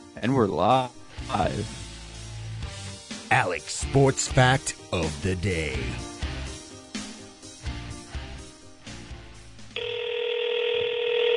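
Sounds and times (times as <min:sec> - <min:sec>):
speech: 0:00.2 - 0:01.8, 0:03.3 - 0:06.1
busy rhythmic electronic phone tone: 0:09.8 - 0:11.3.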